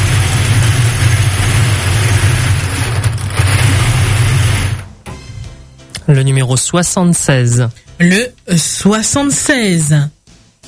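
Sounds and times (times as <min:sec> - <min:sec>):
lottery balls churning inside a drawing machine: 0:00.0 - 0:04.9
speech: 0:06.1 - 0:10.2.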